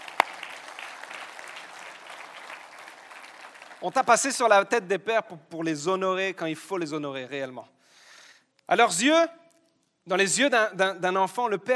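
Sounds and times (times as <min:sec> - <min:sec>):
audience applause: 0:00.0 - 0:04.2
speech: 0:03.8 - 0:07.8, 0:08.7 - 0:09.4, 0:10.1 - 0:11.7.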